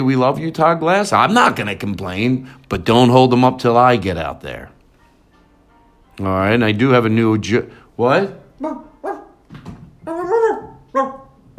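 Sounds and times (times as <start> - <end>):
speech: 0.0 - 4.8, 6.2 - 8.9
dog barking: 9.0 - 9.4, 10.1 - 11.5.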